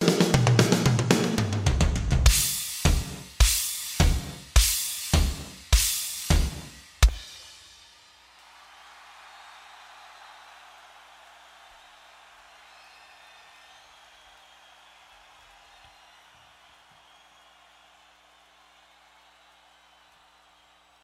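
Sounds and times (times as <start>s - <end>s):
drum playing: 0.0s - 7.7s.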